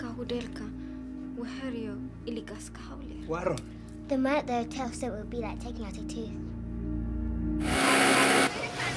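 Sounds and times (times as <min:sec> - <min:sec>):
speech: 0:00.2 - 0:00.8, 0:01.4 - 0:06.5
sewing machine running cotton through in a factory: 0:07.6 - 0:08.9.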